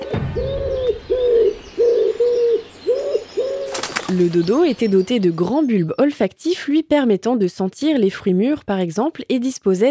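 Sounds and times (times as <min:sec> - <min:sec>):
pigeons cooing: 0:00.0 - 0:04.8
faint chirping from other birds: 0:00.0 - 0:06.8
speech: 0:04.2 - 0:09.8.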